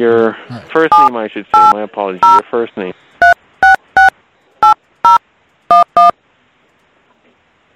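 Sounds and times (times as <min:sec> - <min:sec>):
speech: 0:00.0 - 0:03.3
phone keypad tones of a number being punched in: 0:00.9 - 0:02.4, 0:03.2 - 0:06.2.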